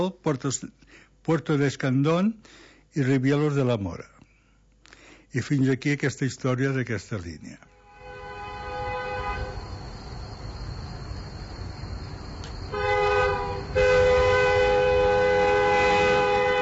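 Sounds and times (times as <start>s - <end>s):
speech: 0.0s - 4.2s, 5.3s - 7.7s
sustained ringing horn-like tones: 7.7s - 16.6s
train rumbling through a level crossing: 7.9s - 16.6s.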